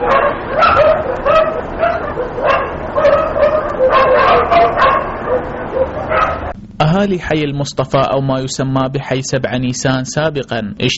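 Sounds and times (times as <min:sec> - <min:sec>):
stray dogs barking: 0:00.0 - 0:06.6
speech: 0:07.0 - 0:10.9.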